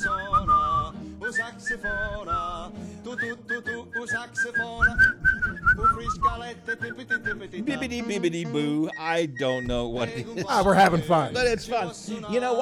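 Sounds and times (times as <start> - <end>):
person whistling a melody along to a song: 0.0 - 7.8, 8.8 - 10.4
upbeat song with steady bass and rhythm: 0.0 - 12.6
speech: 6.8 - 12.6
laughter: 9.8 - 11.8.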